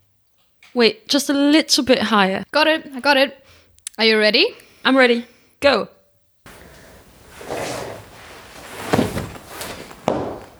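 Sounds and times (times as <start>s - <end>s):
speech: 0.8s - 6.0s
heavy thud of a person falling from a chair: 6.5s - 10.5s
soft scuffle of a person tumbling off a chair: 6.5s - 10.5s.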